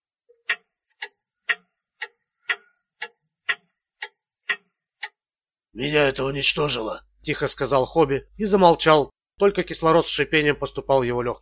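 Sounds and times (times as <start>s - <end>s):
clock ticking in a hushed room: 0.3s - 5.2s
speech: 5.8s - 11.4s.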